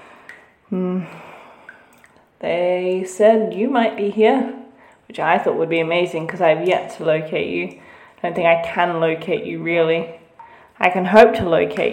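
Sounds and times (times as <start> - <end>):
drips plinking with a short ringing tone in an enclosed space: 0.0 - 11.9
speech: 0.7 - 1.3, 2.4 - 10.2, 10.8 - 11.9.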